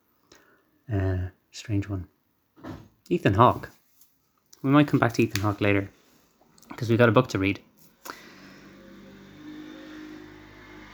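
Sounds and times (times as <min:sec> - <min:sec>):
speech: 0:00.9 - 0:02.2, 0:03.1 - 0:03.8, 0:04.6 - 0:06.0, 0:06.7 - 0:07.7
small motorbike or moped engine droning outside an open window: 0:08.3 - 0:10.9.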